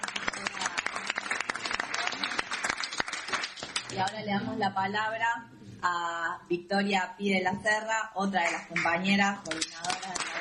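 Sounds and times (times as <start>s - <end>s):
crowd applauding: 0.0s - 4.0s, 9.5s - 10.3s
speech: 3.9s - 10.3s.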